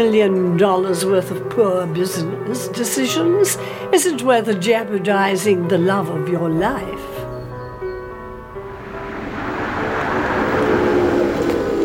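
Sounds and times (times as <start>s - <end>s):
speech: 0.0s - 7.2s
approaching car engine rumbling: 6.5s - 11.8s
broad whooshing road noise: 6.5s - 11.8s.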